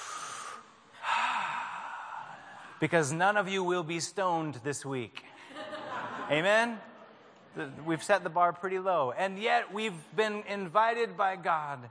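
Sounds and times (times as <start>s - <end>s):
church congregation taking a deep breath together at the benediction: 0.0s - 2.8s
speech: 2.8s - 5.3s, 6.3s - 6.9s, 7.6s - 11.8s
laughter: 5.3s - 6.8s.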